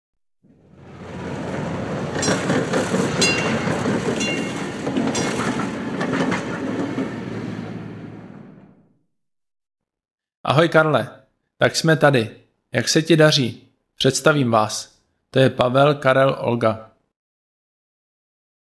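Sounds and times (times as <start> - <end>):
tram rumbling along its rails: 0.5 - 8.9
tram wheels clicking and clacking over track joints: 0.6 - 8.1
speech: 10.6 - 16.9.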